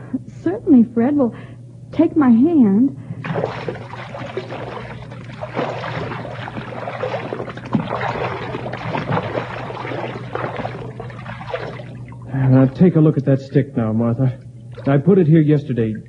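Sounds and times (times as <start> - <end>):
speech: 0.1 - 4.5, 12.4 - 16.0
someone wading through a river about a foot deep: 3.2 - 12.9.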